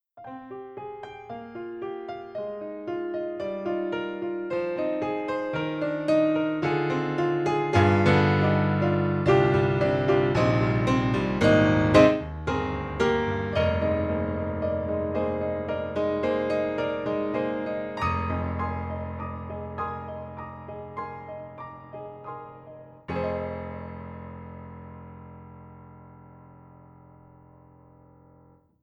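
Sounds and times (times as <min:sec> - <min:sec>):
piano playing C7 chord: 0:00.2 - 0:28.6.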